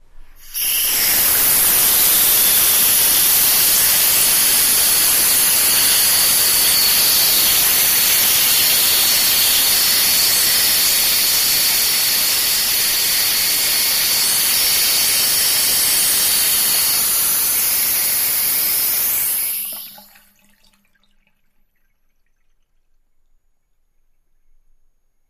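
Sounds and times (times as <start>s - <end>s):
water steam burst: 0.3s - 20.2s.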